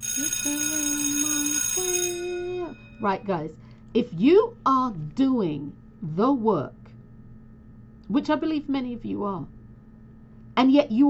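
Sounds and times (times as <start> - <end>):
small bell ringing: 0.0 - 3.2
speech: 3.0 - 6.8, 8.1 - 9.6, 10.6 - 11.0.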